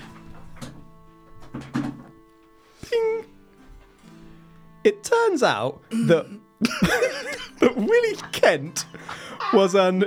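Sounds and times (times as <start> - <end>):
office chair height being raised with mechanical clunks and knocks: 0.0 - 2.6
speech: 1.5 - 2.0, 4.8 - 10.0
laughter: 4.9 - 10.0.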